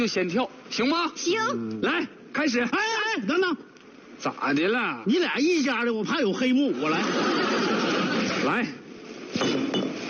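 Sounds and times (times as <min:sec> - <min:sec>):
speech: 0:00.0 - 0:08.8, 0:09.4 - 0:09.8
laughter: 0:06.6 - 0:08.5
thrown water bottle landing with clinking hits in a park: 0:09.4 - 0:10.0.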